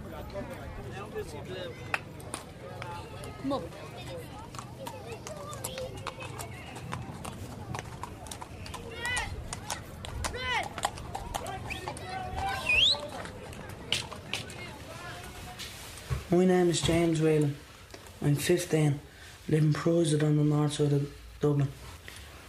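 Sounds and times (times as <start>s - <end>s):
street noise: 0.0s - 22.4s
speech: 1.2s - 2.3s, 3.2s - 4.5s, 16.3s - 17.6s, 18.2s - 21.8s
horse hooves clip-clopping on a hard surface in Dublin: 2.2s - 17.5s.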